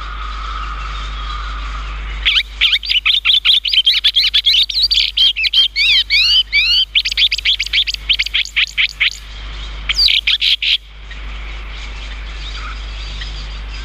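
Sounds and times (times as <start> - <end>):
chestnut-cheeked starling chirping: 0.6 - 13.8.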